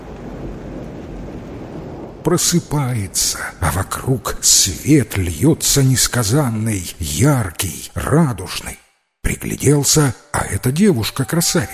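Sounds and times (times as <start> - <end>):
heavy rain downpour: 0.0 - 7.0
speech: 2.2 - 11.7.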